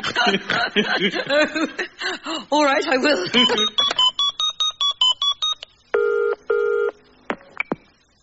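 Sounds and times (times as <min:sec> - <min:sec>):
speech: 0:00.2 - 0:04.0
telephone keypad tones as a number is dialed: 0:03.4 - 0:07.8.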